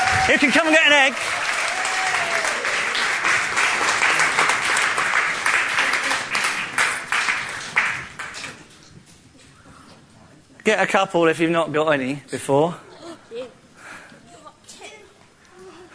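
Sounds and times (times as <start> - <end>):
crowd applause: 0.0 - 8.7
speech: 0.3 - 1.4, 10.6 - 12.9.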